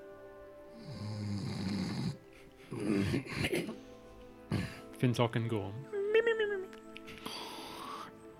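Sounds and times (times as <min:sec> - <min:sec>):
person imitating loud rattling snoring: 0:00.8 - 0:03.4
speech: 0:03.1 - 0:03.8, 0:05.0 - 0:06.0.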